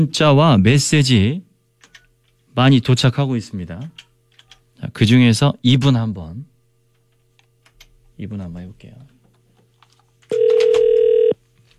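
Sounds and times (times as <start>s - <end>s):
speech: 0.0s - 1.5s, 2.6s - 4.0s, 4.8s - 6.5s, 8.2s - 9.2s, 10.3s - 10.6s
telephone ring as a single steady electronic tone: 10.3s - 11.4s.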